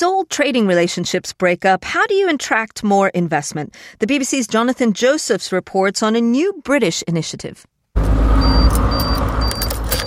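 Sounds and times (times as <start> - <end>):
speech: 0.0 - 7.7
Teva Motors electric truck starting up with a low hum: 8.0 - 10.0
brief rattling clicks: 8.7 - 10.0.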